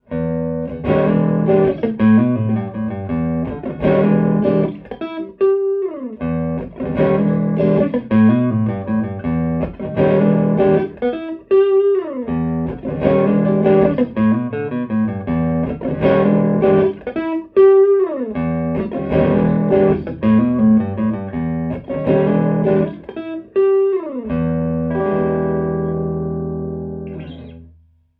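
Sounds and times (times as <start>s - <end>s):
electric guitar recorded with C3000 room microphone: 0.0s - 27.8s.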